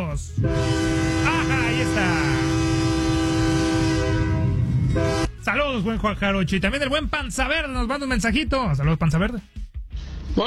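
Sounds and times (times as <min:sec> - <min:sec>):
rumbling background: 0:00.0 - 0:10.4
speech: 0:00.2 - 0:00.9, 0:01.8 - 0:02.4, 0:05.0 - 0:09.6
sustained train horn blast from a locomotive: 0:00.4 - 0:05.5.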